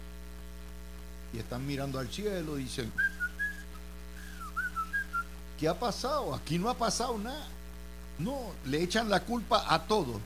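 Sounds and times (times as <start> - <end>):
steady low hum: 0.0 - 10.2
speech: 1.3 - 3.2, 5.6 - 7.6, 8.2 - 10.2
person whistling a short tune casually: 3.0 - 5.3.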